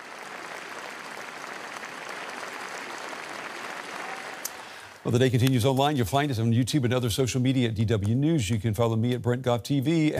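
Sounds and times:
large crowd applauding outside the royal palace after a funeral service: 0.0s - 5.5s
speech: 5.0s - 10.1s.

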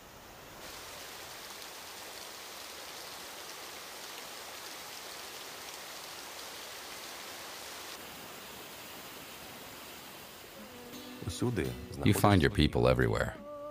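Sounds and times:
shower water running: 0.4s - 10.8s
speech: 11.4s - 13.4s.

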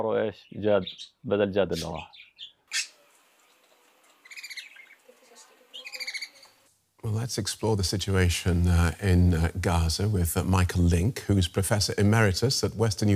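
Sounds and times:
speech: 0.0s - 2.5s, 7.0s - 13.1s
caged pet bird chirping: 0.4s - 6.6s.

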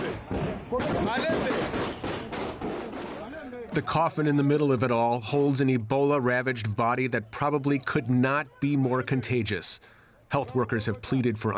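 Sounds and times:
gunshots: 0.0s - 3.4s
noisy crowd: 0.0s - 11.5s
speech: 3.8s - 11.5s.

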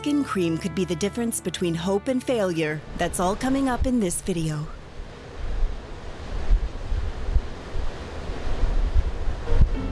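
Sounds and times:
speech: 0.0s - 4.8s
Baltic Sea waves breaking on shore: 2.8s - 9.9s
gusty wind buffeting the microphone: 5.0s - 9.9s.

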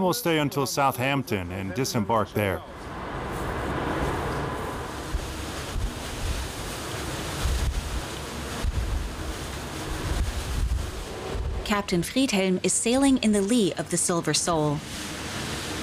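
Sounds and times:
speech: 0.0s - 3.0s, 11.7s - 15.2s
rough sea surf rolling and crashing: 2.3s - 15.8s
strong wind buffeting the microphone: 2.9s - 11.7s.

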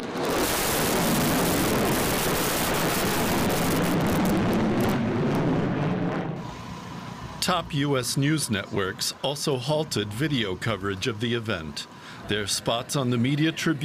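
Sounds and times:
bomber aircraft flying over a ceremony: 0.0s - 6.6s
speech: 7.5s - 13.8s.

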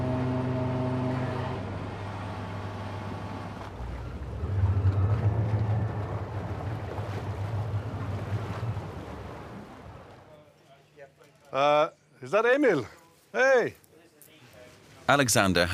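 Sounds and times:
two boat engines running: 0.0s - 10.3s
water noise: 0.0s - 10.4s
wind: 0.0s - 15.7s
speech: 11.5s - 13.8s, 15.1s - 15.7s.

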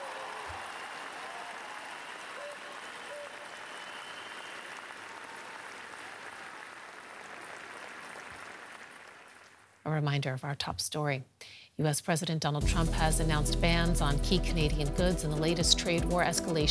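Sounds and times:
large crowd applauding outdoors at a royal palace after a funeral service: 0.0s - 9.8s
speech: 9.9s - 16.6s.

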